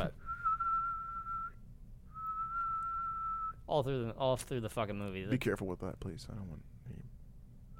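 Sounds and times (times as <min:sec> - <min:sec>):
person whistling: 0:00.2 - 0:03.6
speech: 0:03.7 - 0:07.2.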